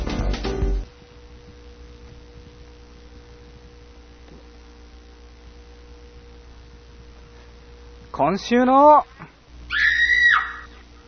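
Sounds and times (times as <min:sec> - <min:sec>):
speech: 0:08.2 - 0:09.1
high-pitched scream: 0:09.7 - 0:10.7.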